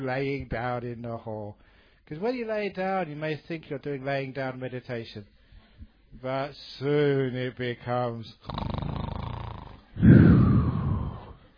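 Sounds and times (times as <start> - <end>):
speech: 0.0 - 5.4, 6.1 - 8.7
person imitating loud snoring: 8.4 - 11.4.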